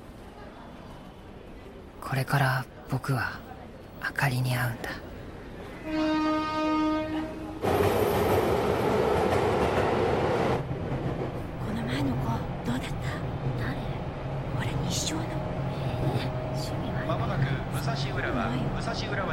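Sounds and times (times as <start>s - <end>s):
speech: 2.0s - 5.1s, 5.8s - 6.6s, 17.8s - 19.3s
train rolling along the rails: 4.4s - 19.3s
steady horn-like tone: 5.8s - 7.6s.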